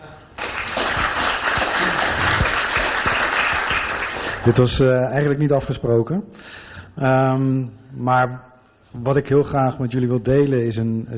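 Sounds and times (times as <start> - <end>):
audience applauding at a gathering: 0.3 - 4.7
speech: 4.4 - 11.1.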